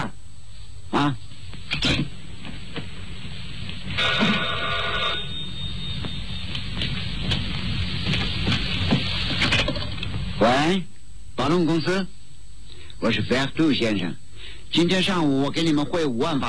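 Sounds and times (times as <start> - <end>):
steady hum: 0.0 - 16.4
speech: 1.0 - 1.2, 11.8 - 12.2, 13.1 - 16.4
telephone bell ringing in a sustained metallic trill: 4.0 - 6.2.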